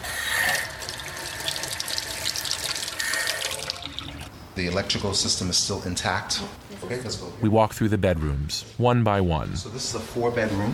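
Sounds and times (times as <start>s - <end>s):
faucet running into a sink: 0.4s - 4.3s
speech: 4.6s - 10.7s.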